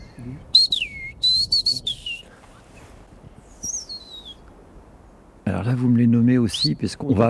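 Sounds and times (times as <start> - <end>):
chiffchaff contact calls: 0.0 - 2.3, 3.4 - 4.5
speech: 0.2 - 0.5, 5.6 - 7.2.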